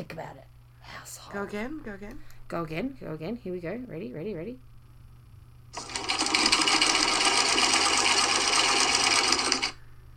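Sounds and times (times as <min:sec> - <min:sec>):
speech: 0:00.0 - 0:04.7
sewing machine running: 0:05.8 - 0:09.8.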